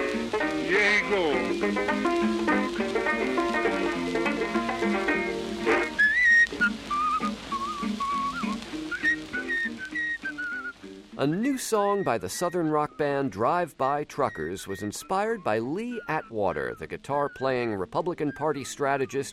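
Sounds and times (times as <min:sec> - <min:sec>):
instrumental music: 0:00.0 - 0:19.3
speech: 0:00.7 - 0:05.1, 0:11.2 - 0:19.3
man whistling a lively ragtime melody: 0:05.8 - 0:13.3, 0:14.1 - 0:19.3.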